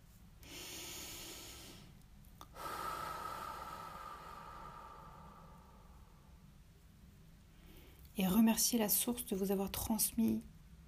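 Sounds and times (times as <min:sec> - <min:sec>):
slow deep breathing: 0:00.4 - 0:06.5
speech: 0:08.2 - 0:10.5.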